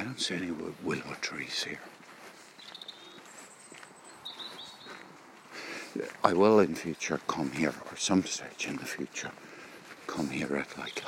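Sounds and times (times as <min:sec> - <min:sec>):
soft outdoor hiss: 0:00.0 - 0:11.0
speech: 0:00.2 - 0:02.0, 0:06.0 - 0:09.5, 0:10.1 - 0:11.0
chaffinch or willow warbler singing: 0:02.5 - 0:05.3.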